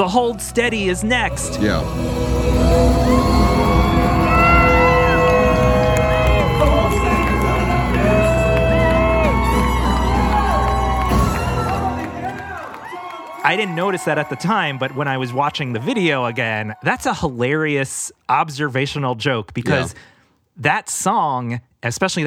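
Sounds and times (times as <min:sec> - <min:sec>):
speech: 0:00.0 - 0:03.4, 0:13.5 - 0:22.2
packed concert crowd cheering at the end of a song: 0:01.2 - 0:17.3
whoops and shouts from concert crowd: 0:02.2 - 0:17.0
whistles from concert crowd: 0:02.7 - 0:16.8.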